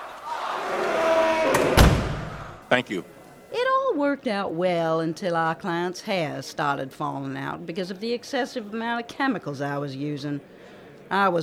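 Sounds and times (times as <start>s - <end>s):
door slamming shut: 0.6s - 2.6s
speech: 2.7s - 11.4s.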